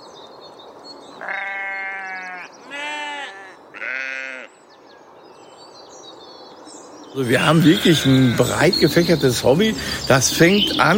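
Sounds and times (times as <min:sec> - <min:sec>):
faint birdsong: 0:00.0 - 0:10.9
sheep bleating on a meadow: 0:01.2 - 0:04.5, 0:07.5 - 0:08.9
speech: 0:07.1 - 0:10.9.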